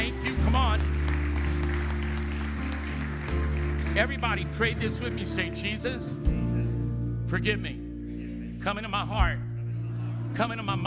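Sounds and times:
large audience clapping and cheering: 0.0 - 6.0
sustained low keyboard chord: 0.0 - 10.8
speech: 4.0 - 6.4, 7.3 - 7.8, 8.6 - 9.5, 10.3 - 10.8.

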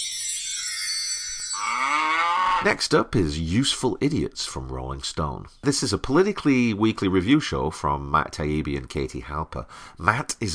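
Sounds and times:
bright hissy shimmer: 0.0 - 1.6
cow mooing: 1.6 - 2.7
speech: 2.6 - 10.5.

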